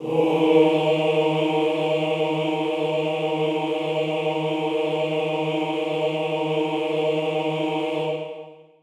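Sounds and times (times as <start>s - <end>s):
male chorus singing on D sharp: 0.0s - 8.8s.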